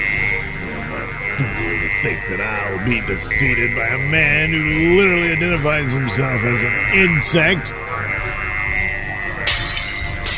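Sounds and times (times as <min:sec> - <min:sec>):
steady rumbling background: 0:00.0 - 0:10.3
speech: 0:02.0 - 0:07.9
window glass breaking: 0:09.5 - 0:10.3.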